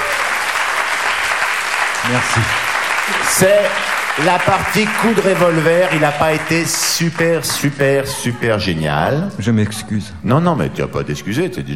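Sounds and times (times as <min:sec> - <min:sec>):
audience applauding loudly: 0:00.0 - 0:08.7
speech: 0:02.1 - 0:11.7.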